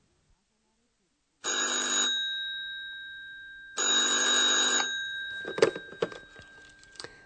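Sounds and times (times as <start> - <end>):
old-style telephone bell ringing at a hotel reception desk: 1.4 - 6.8.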